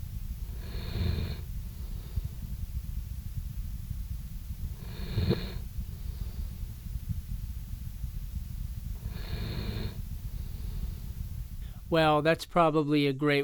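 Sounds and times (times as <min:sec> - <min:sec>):
low rumbling hum: 0:00.0 - 0:12.4
Labrador retriever snoring while asleep: 0:00.4 - 0:02.6, 0:04.6 - 0:06.7, 0:08.9 - 0:11.1
speech: 0:11.9 - 0:13.4.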